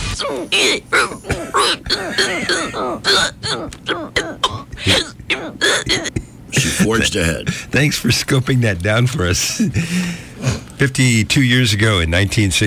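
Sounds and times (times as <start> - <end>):
person hiccuping: 0.1 - 6.4
speech: 0.2 - 4.0, 6.9 - 12.6.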